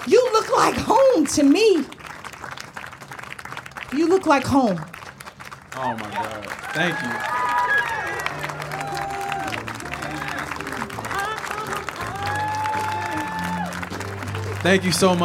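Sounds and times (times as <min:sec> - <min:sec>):
speech: 0:00.0 - 0:02.0, 0:03.9 - 0:04.9, 0:05.8 - 0:07.4, 0:14.6 - 0:15.2
big audience applause: 0:00.0 - 0:15.2
people cheering: 0:05.7 - 0:15.2.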